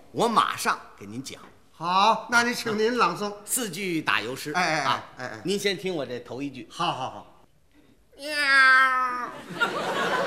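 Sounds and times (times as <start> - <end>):
speech: 0.1 - 7.3, 8.2 - 10.2
comic performer yowling in imitation of a cat: 8.2 - 9.4
audience laughter: 9.4 - 10.2.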